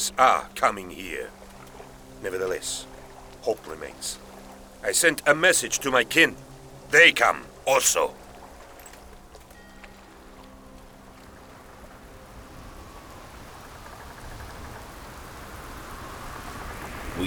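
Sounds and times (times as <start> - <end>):
speech: 0.0 - 1.4, 2.2 - 4.2, 4.8 - 8.2
steady dense rain pouring in a storm: 0.0 - 8.8, 12.8 - 17.2.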